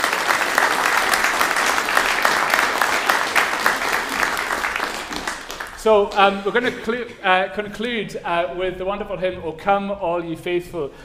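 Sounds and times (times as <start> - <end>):
audience applause: 0.0 - 6.8
speech: 5.8 - 11.0.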